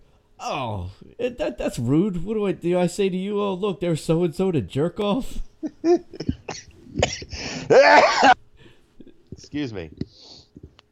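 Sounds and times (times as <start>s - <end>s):
speech: 0.4s - 8.4s, 9.4s - 10.2s
person coughing in a rough fit: 6.0s - 8.4s.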